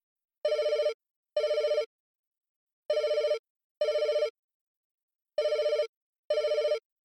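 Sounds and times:
telephone ringing in a double-ring pattern: 0:00.4 - 0:01.9, 0:02.9 - 0:04.4, 0:05.4 - 0:06.8.

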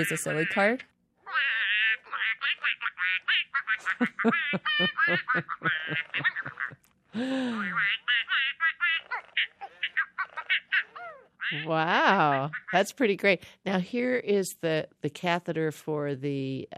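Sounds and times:
speech: 0:00.0 - 0:00.9, 0:04.0 - 0:06.5, 0:07.2 - 0:09.2, 0:11.5 - 0:16.7
toy duck in silly mode quacking and chattering: 0:00.0 - 0:03.8, 0:07.8 - 0:13.0
laughter: 0:02.5 - 0:12.8.

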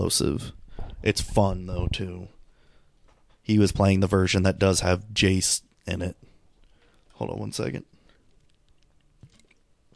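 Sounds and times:
speech: 0:00.0 - 0:02.4, 0:03.4 - 0:06.3, 0:07.2 - 0:07.9
person drinking water with wet swallows and gulps: 0:08.0 - 0:09.9.

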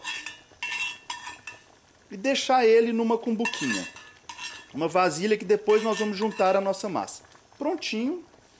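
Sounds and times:
metal utensil scraping a pan removing cooked bacon: 0:00.0 - 0:01.8, 0:03.4 - 0:06.8
faint sizzle of cooked bacon in a pan: 0:00.0 - 0:08.5
speech: 0:02.1 - 0:04.0, 0:04.7 - 0:08.3.

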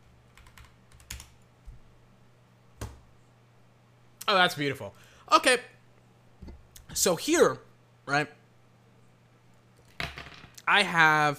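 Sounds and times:
typing a search word on a computer keyboard: 0:00.3 - 0:01.4
speech: 0:04.3 - 0:05.7, 0:07.0 - 0:08.4, 0:10.7 - 0:11.3.

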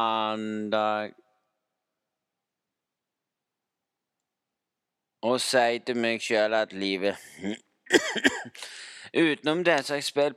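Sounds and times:
speech: 0:00.0 - 0:01.2, 0:05.2 - 0:10.3
throat clearing: 0:07.4 - 0:08.6
person coughing raspy: 0:07.4 - 0:08.7.

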